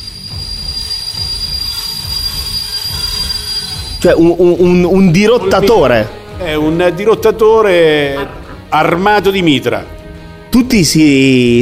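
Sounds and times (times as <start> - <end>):
train wheels squealing while braking: 0.0 - 4.4
speech: 4.0 - 11.6.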